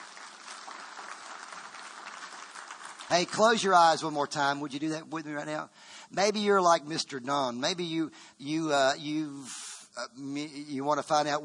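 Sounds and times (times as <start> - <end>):
church congregation clapping: 0.0 - 4.4
speech: 3.1 - 11.4.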